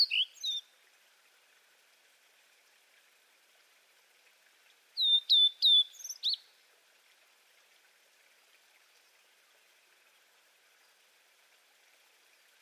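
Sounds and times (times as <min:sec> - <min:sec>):
Blue-and-white flycatcher Cyanoptila cyanomelana singing: 0:05.0 - 0:06.4.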